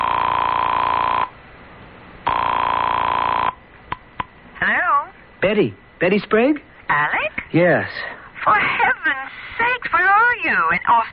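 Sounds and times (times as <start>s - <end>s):
telephone ringing through a phone earpiece on a call: 0.0s - 1.4s, 2.3s - 3.6s
speech: 5.6s - 11.1s.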